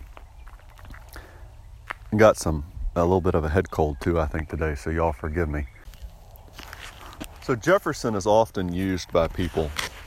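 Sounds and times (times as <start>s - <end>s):
footsteps crunching outdoors at a walking pace: 0.0s - 2.7s, 5.8s - 10.0s
speech: 2.1s - 5.8s, 7.5s - 9.8s.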